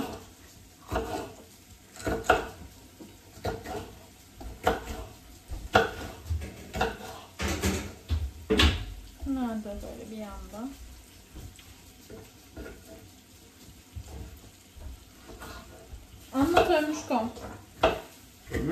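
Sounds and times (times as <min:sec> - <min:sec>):
soft kitchen clatter: 0:00.0 - 0:18.7
knife chopping peppers on a cutting board: 0:00.9 - 0:01.4, 0:02.0 - 0:02.7, 0:03.4 - 0:08.8, 0:17.4 - 0:18.7
speech: 0:16.8 - 0:17.6.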